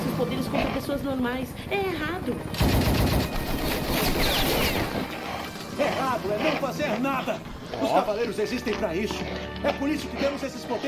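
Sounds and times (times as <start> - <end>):
speech: 0.2 - 5.2, 5.8 - 10.8
automatic gunfire bursts: 2.5 - 5.1.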